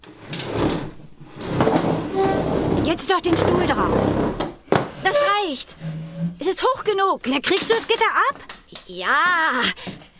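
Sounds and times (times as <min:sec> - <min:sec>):
desk pushed across the floor against a wall: 0:00.0 - 0:06.5
speech: 0:02.9 - 0:04.5, 0:05.1 - 0:10.0.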